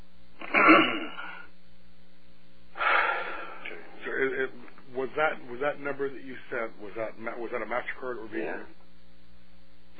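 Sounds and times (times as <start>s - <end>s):
person coughing harshly over a telephone-like line: 0.4s - 1.5s
speech: 5.2s - 8.8s.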